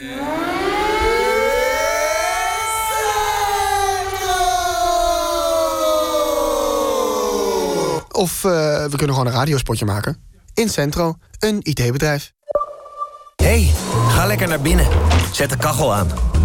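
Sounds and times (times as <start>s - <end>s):
civil defense air raid siren wailing: 0.0s - 8.0s
speech: 8.2s - 12.4s, 13.5s - 16.4s.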